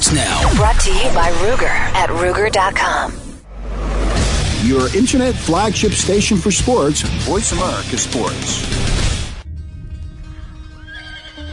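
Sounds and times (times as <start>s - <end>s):
speech: 0.1s - 3.2s, 4.6s - 9.0s
horse whinnying: 10.8s - 11.5s.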